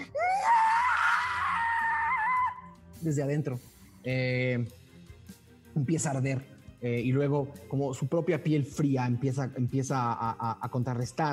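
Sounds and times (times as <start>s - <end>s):
long piercing high-pitched scream: 0.0s - 2.7s
speech: 3.0s - 4.8s, 5.8s - 11.3s.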